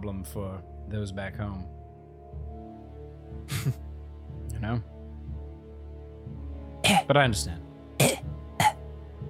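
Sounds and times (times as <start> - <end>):
speech: 0.0 - 2.5, 3.3 - 4.9, 6.9 - 8.3
weak little cough: 6.9 - 7.1, 8.0 - 8.8.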